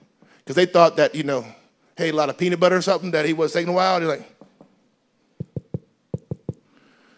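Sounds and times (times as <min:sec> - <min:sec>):
speech: 0:00.5 - 0:04.3
firm knocking on a door: 0:05.4 - 0:06.6.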